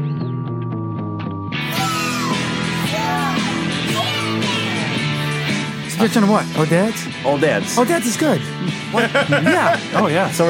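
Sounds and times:
music: 0:00.0 - 0:10.4
children screaming and shrieking: 0:01.7 - 0:05.0
speech: 0:06.0 - 0:10.4
laughter: 0:08.6 - 0:10.4.

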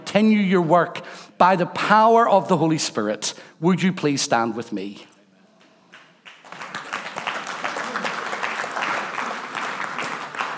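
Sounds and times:
speech: 0:00.1 - 0:05.1
crowd applauding with many hands clapping: 0:05.9 - 0:10.5.

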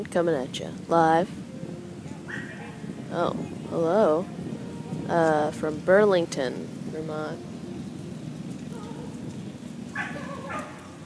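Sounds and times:
speech: 0:00.0 - 0:01.4, 0:03.1 - 0:07.5
outdoor noise: 0:00.0 - 0:11.0
dog barking: 0:10.0 - 0:10.9.

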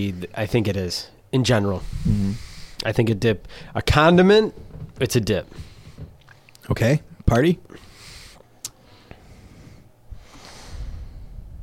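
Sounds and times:
speech: 0:00.0 - 0:05.7, 0:06.7 - 0:07.8
loud breathing into the microphone: 0:01.8 - 0:03.8, 0:05.5 - 0:06.6, 0:07.7 - 0:11.6.

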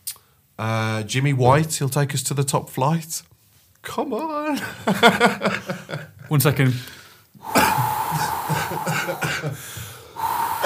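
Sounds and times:
speech: 0:00.6 - 0:08.2, 0:08.8 - 0:09.8
person coughing in a fit while laughing: 0:07.4 - 0:09.6
breathy wheezy laughter-like gasps: 0:07.4 - 0:09.8.

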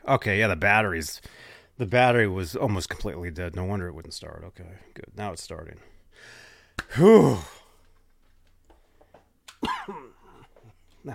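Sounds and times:
speech: 0:00.1 - 0:07.6, 0:09.6 - 0:10.1
harsh throaty cough from a person feeling unwell: 0:09.6 - 0:10.8.

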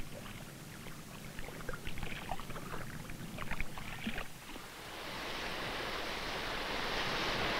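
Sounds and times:
water sloshing and splashing: 0:00.0 - 0:04.7
ocean surf rolling in toward the beach: 0:04.5 - 0:07.5.

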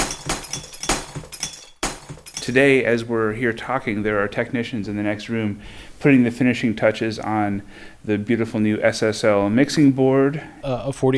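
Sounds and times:
glass breaking in a concrete pit: 0:00.0 - 0:02.7
glass shards tinkling: 0:00.0 - 0:02.7
speech: 0:02.4 - 0:11.1.

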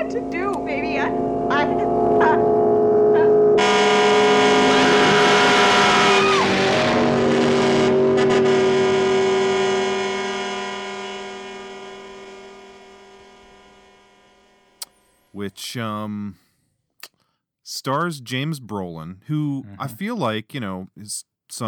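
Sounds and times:
speech: 0:00.0 - 0:02.5, 0:15.7 - 0:16.5, 0:17.8 - 0:21.6
distorted car engine roaring and revving with an eerie warped tone: 0:01.0 - 0:14.1.

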